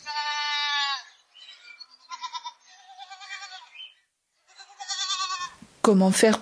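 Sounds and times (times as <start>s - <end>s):
herd of goats bleating among sand dunes: 0.0s - 1.3s, 1.9s - 5.6s
speech: 5.8s - 6.4s.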